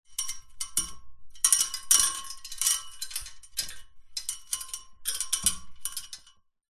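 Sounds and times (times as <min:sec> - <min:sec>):
household fairy lights wrapping around a metal pole: 0:00.1 - 0:06.3.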